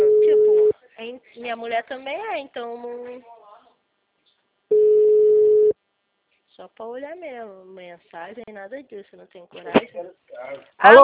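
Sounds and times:
electronic phone busy tone after a dropped call: 0.0s - 0.7s, 4.7s - 5.8s
speech: 1.5s - 3.4s, 6.6s - 11.0s.

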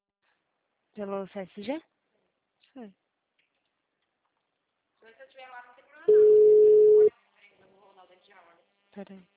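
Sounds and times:
speech: 1.0s - 1.9s, 2.8s - 3.0s, 9.0s - 9.3s
telephone line tone while a call is being placed: 6.1s - 7.1s.

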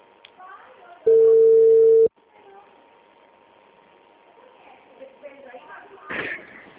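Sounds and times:
faint low hum: 0.0s - 6.7s
telephone ring tone on a call: 1.1s - 2.1s.

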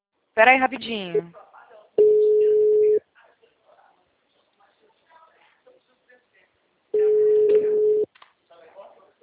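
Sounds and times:
speech: 0.4s - 1.5s
telephone busy tone after a dropped call: 2.0s - 3.0s, 7.0s - 8.1s.

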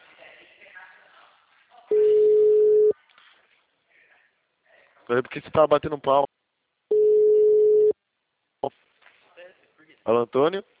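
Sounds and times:
telephone busy signal: 1.9s - 2.9s, 6.9s - 7.9s
speech: 5.1s - 6.4s, 10.1s - 10.7s.

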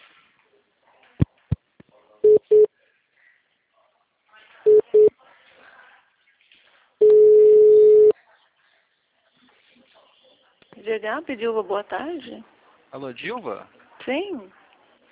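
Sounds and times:
telephone beeps during a call transfer: 2.2s - 2.7s, 4.7s - 5.1s, 7.0s - 8.1s
speech: 10.9s - 14.6s.

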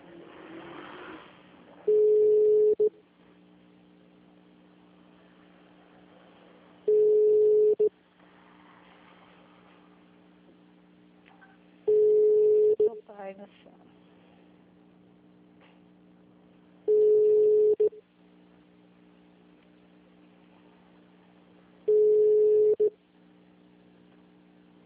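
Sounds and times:
faint low hum: 0.0s - 24.8s
ringback tone of a telephone call being placed: 1.9s - 2.9s, 6.9s - 7.9s, 11.9s - 13.0s, 16.9s - 18.0s, 21.9s - 22.9s.

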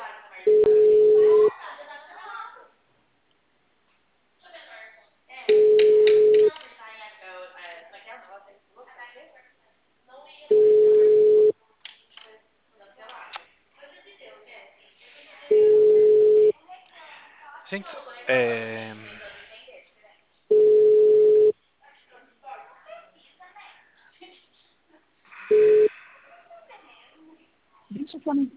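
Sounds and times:
people talking: 0.0s - 2.7s, 4.4s - 11.4s, 12.2s - 19.7s, 25.5s - 28.5s
telephone ringback tone: 0.5s - 1.5s, 5.5s - 6.5s, 10.5s - 11.5s, 15.5s - 16.5s, 20.5s - 21.5s, 25.5s - 25.9s.

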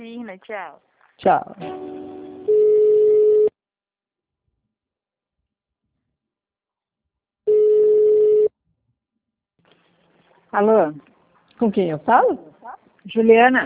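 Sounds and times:
speech: 0.0s - 2.0s, 10.5s - 13.6s
telephone line tones during a call transfer: 2.5s - 3.5s, 7.5s - 8.5s.

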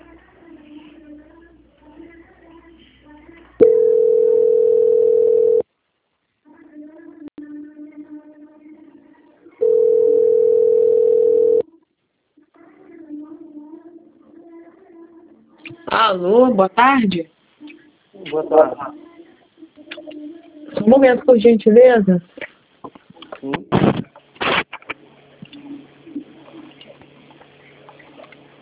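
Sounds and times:
telephone line tone while a call is being transferred: 3.6s - 5.6s, 9.6s - 11.7s
speech: 16.1s - 17.4s, 18.3s - 19.0s, 20.8s - 22.3s.

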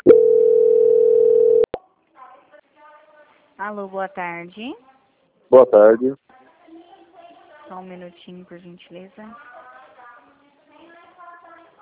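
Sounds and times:
telephone line tone during call transfer: 0.0s - 1.7s
speech: 3.7s - 4.9s, 5.5s - 6.2s, 7.7s - 9.5s.

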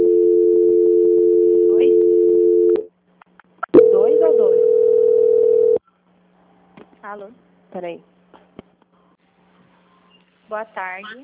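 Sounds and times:
telephone line tone during call transfer: 0.0s - 2.8s, 3.8s - 5.8s
speech: 7.2s - 8.1s, 10.5s - 11.2s.

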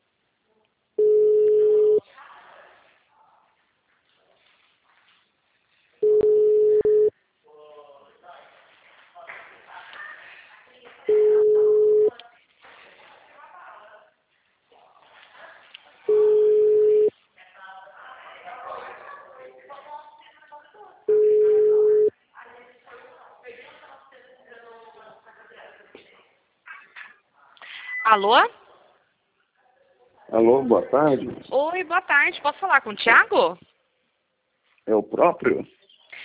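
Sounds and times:
ringback tone of a telephone call being dialed: 1.0s - 2.0s, 6.0s - 7.1s, 11.1s - 12.1s, 16.1s - 17.1s, 21.1s - 22.1s
speech: 28.1s - 28.6s, 30.4s - 33.7s, 34.9s - 35.8s.

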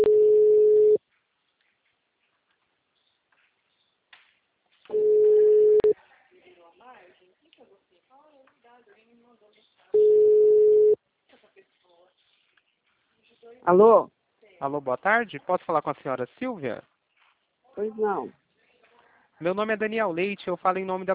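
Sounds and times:
telephone ringback tone while a call is placed: 0.0s - 1.0s, 4.9s - 5.9s, 10.0s - 11.0s
speech: 13.6s - 16.9s, 17.8s - 18.4s, 19.4s - 21.1s.

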